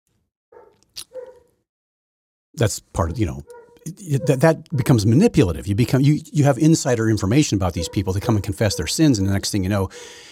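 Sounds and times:
dog barking: 0:00.5 - 0:01.5, 0:03.0 - 0:05.2, 0:07.4 - 0:09.1
dog yelping: 0:00.6 - 0:01.5, 0:03.0 - 0:05.1, 0:07.6 - 0:09.0
speech: 0:02.6 - 0:10.3.

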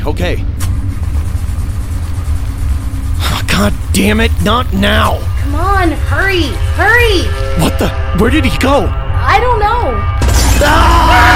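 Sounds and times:
car engine running: 0:00.0 - 0:07.4
speech: 0:00.1 - 0:00.6, 0:03.6 - 0:11.3.

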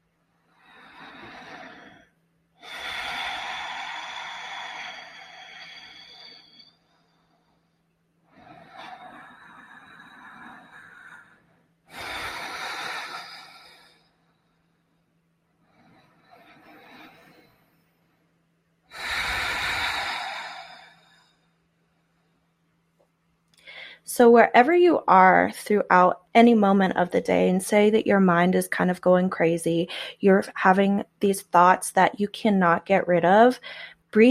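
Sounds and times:
faint steady low hum: 0:00.0 - 0:34.2
deep breaths in and out through the nostrils: 0:00.4 - 0:17.8, 0:18.9 - 0:22.5
speech: 0:24.2 - 0:34.2.

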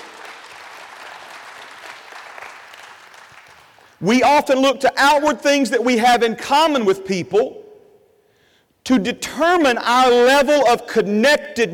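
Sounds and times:
room full of people clapping: 0:00.0 - 0:04.0
speech: 0:04.0 - 0:07.6, 0:08.9 - 0:11.7.

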